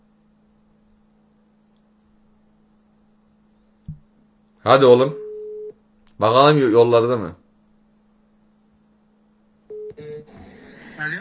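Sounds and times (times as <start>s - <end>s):
speech: 4.7s - 5.2s, 6.2s - 7.4s
telephone keypad dialing tones: 9.7s - 10.3s
telephone line noise: 9.7s - 10.4s.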